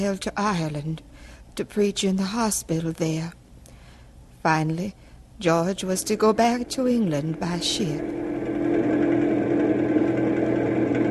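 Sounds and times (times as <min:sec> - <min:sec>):
speech: 0:00.0 - 0:03.4, 0:04.4 - 0:08.4
car engine running: 0:06.1 - 0:11.1.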